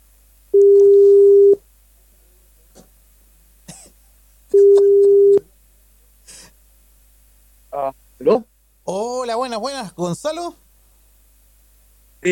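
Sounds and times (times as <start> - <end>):
outgoing telephone call ringing tones: 0.6 - 1.6, 4.6 - 5.4
speech: 9.6 - 10.6.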